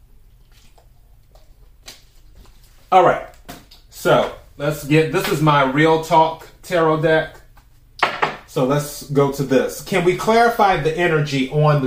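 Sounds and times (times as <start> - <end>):
low steady hum: 0.0 - 11.8
person sipping water from a bottle: 0.1 - 1.8
speech: 2.9 - 3.3, 4.0 - 7.4, 8.5 - 11.8.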